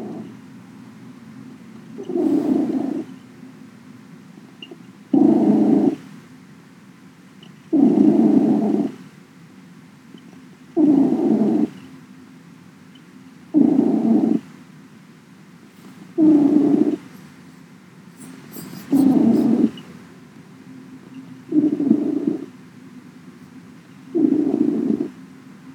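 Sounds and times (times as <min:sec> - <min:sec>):
cat purring: 0:02.0 - 0:03.2, 0:05.2 - 0:06.0, 0:07.7 - 0:09.0, 0:10.8 - 0:11.8, 0:13.5 - 0:14.5, 0:15.7 - 0:20.0, 0:21.5 - 0:22.5, 0:24.1 - 0:25.2.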